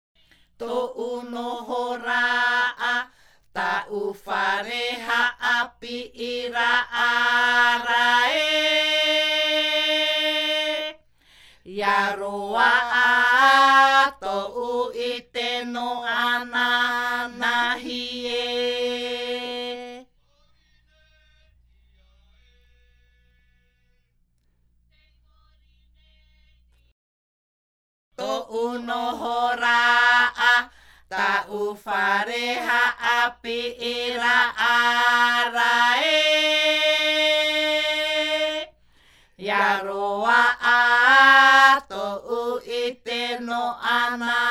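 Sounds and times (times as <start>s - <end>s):
Maohi polyphonic himene ruau chants: 0.6s - 11.0s, 11.7s - 20.1s, 28.2s - 38.8s, 39.4s - 44.4s.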